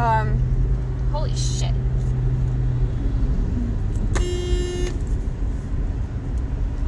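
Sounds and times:
road and engine rumble from a moving car: 0.0s - 6.8s
small car horn honking while driving: 4.1s - 5.0s.

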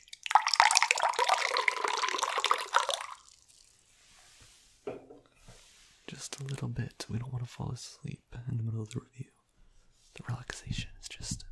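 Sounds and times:
peach raspberry black tea poured into a glass: 0.0s - 3.8s
faint knock: 4.8s - 5.2s
speech: 6.2s - 9.3s, 10.2s - 11.4s.

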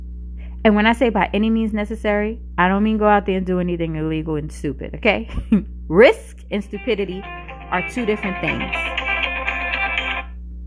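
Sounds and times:
speech: 0.6s - 9.0s
electronic phone ringtone: 7.2s - 10.3s.

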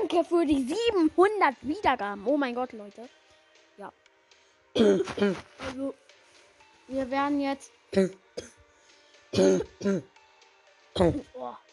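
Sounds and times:
speech: 0.1s - 3.2s, 3.8s - 4.0s, 4.7s - 6.0s, 6.9s - 8.5s, 9.3s - 10.1s, 11.0s - 11.7s
person clearing throat: 4.8s - 5.7s, 7.9s - 8.6s, 9.3s - 10.1s, 11.0s - 11.3s
person coughing: 4.8s - 5.7s, 9.4s - 10.1s.

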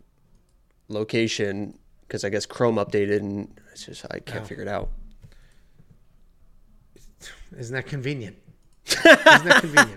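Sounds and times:
computer mouse clicking: 0.2s - 0.8s
speech: 0.9s - 5.0s, 7.2s - 9.9s
laughter: 8.9s - 9.9s.

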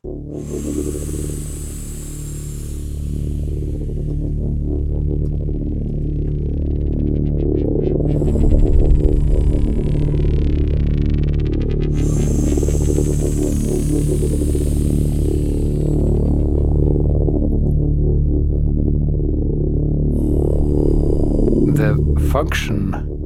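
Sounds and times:
dense droning electronic music track: 0.0s - 23.2s
speech: 0.3s - 1.6s, 22.4s - 23.0s
slow breathy inhales and exhales: 0.3s - 4.4s, 8.1s - 9.8s, 11.9s - 17.0s, 20.1s - 21.6s.

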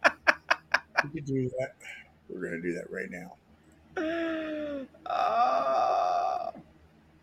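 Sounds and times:
speech: 1.0s - 3.4s, 4.0s - 5.8s
moaning wailing vocal sound: 4.0s - 6.6s.

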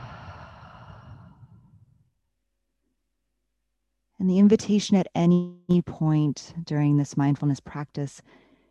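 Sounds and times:
long soft exhale through the mouth during a guided breathing exercise: 0.0s - 1.8s
speech: 4.2s - 8.4s.

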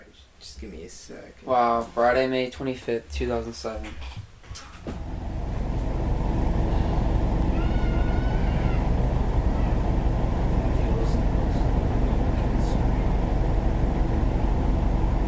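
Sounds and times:
speech: 0.5s - 5.0s
steady roar of street traffic: 4.9s - 15.2s
children screaming outside a restaurant: 6.5s - 11.0s.

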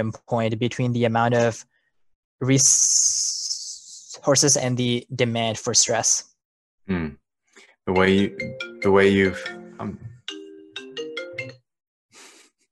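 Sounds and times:
speech: 0.0s - 1.7s, 2.4s - 3.5s, 4.2s - 6.3s, 6.9s - 7.2s, 7.9s - 10.1s
computer incoming-call ringtone: 7.9s - 11.6s.

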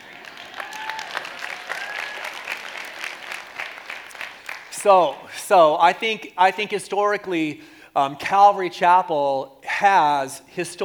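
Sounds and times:
audience clapping: 0.0s - 5.2s
faint whistles and cheers: 0.2s - 2.7s
speech: 4.8s - 10.8s.

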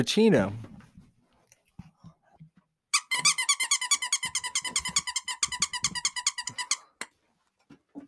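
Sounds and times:
speech: 0.0s - 0.7s
squeaky dog toy squeaking: 2.9s - 7.1s.

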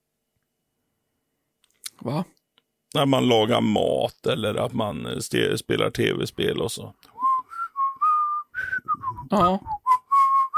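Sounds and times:
speech: 2.0s - 7.1s, 9.3s - 9.7s
person whistling a short wavering tune: 7.2s - 10.5s.

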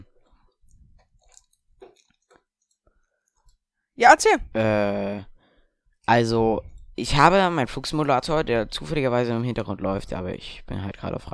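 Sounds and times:
wet chewing of a soft cheese string snack: 0.1s - 3.6s
irregular mouth smacking and clicking: 0.7s - 2.8s
speech: 4.0s - 5.3s, 6.1s - 11.3s.

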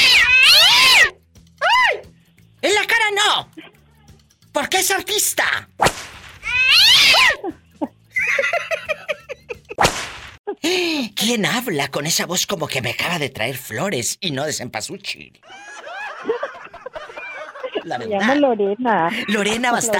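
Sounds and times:
cat yowling and caterwauling: 0.0s - 2.0s, 6.4s - 7.4s
speech: 4.6s - 6.0s, 10.6s - 16.4s, 17.8s - 19.9s
laughter: 7.4s - 9.8s, 15.4s - 19.9s.

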